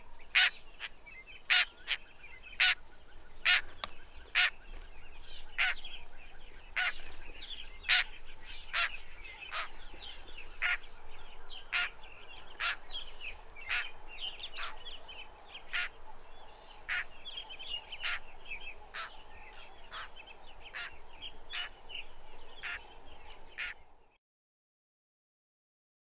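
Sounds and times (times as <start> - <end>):
lilac-breasted roller grating calls: 0.3 - 2.8, 3.4 - 4.6, 5.5 - 6.0, 6.7 - 7.0, 7.8 - 10.9, 11.5 - 14.9, 15.6 - 16.0, 16.8 - 17.1, 17.9 - 18.3, 18.9 - 21.8, 22.6 - 22.9, 23.5 - 23.8.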